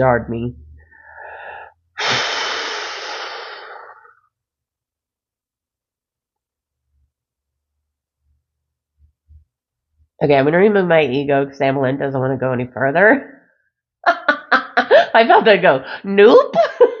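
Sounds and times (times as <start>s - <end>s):
speech: 0.0s - 0.6s, 10.2s - 13.4s, 15.1s - 16.9s
deep breath: 0.8s - 4.2s.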